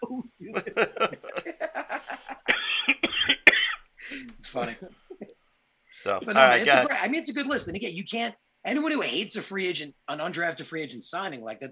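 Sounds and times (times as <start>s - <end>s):
speech: 0.2s - 0.9s, 6.4s - 11.6s
breathy chuckles: 0.6s - 2.5s
harsh raspy coughs: 2.3s - 4.3s.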